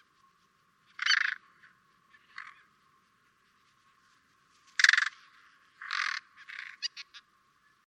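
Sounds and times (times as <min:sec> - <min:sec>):
carrion crow Corvus corone cawing: 0:01.0 - 0:01.4, 0:02.2 - 0:02.7, 0:04.8 - 0:05.2, 0:05.8 - 0:07.2.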